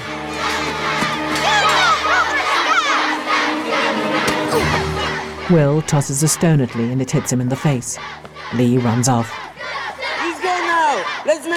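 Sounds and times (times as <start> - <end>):
crowd of school kids shouting and jeering while chasing a boy: 0.3 - 5.6, 8.0 - 11.5
speech: 5.5 - 9.5.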